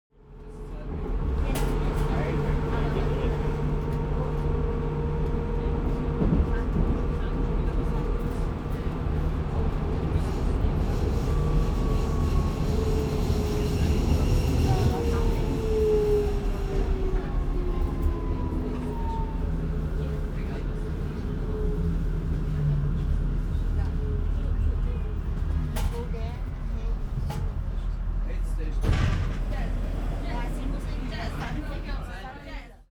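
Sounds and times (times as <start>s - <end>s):
subway train interior ambience: 0.1s - 32.9s.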